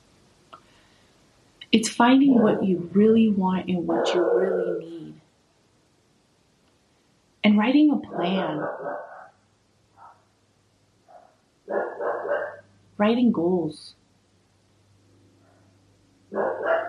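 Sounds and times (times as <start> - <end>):
speech: 1.7 - 5.2, 7.5 - 9.1, 13.0 - 14.0
bulldog barking: 2.3 - 2.6, 3.9 - 5.0, 8.1 - 9.4, 10.0 - 10.3, 11.1 - 12.7, 15.4 - 16.8.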